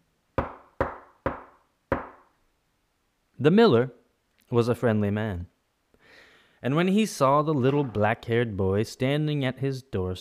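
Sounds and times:
knocking on a wooden door: 0.4s - 2.2s
speech: 3.4s - 5.5s, 6.6s - 10.2s.

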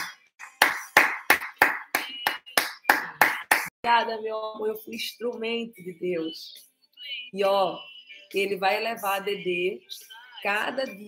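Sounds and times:
hand clapping as applause: 0.0s - 3.7s
speech: 3.8s - 11.0s.

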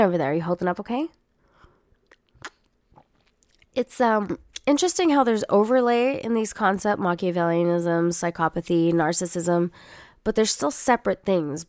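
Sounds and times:
speech: 0.0s - 1.2s, 3.8s - 11.6s
quick sip of coffee with slurp and swallow: 2.0s - 3.7s.

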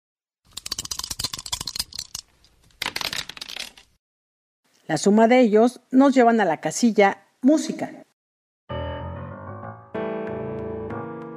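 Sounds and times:
dice rolling and rattling: 0.5s - 4.0s
speech: 4.9s - 8.0s.

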